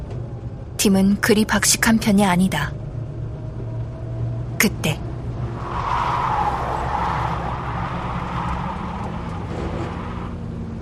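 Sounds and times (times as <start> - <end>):
speech: 0.8 - 2.8, 4.6 - 5.0
taxi tyres slipping and spinning in mud: 5.6 - 10.5.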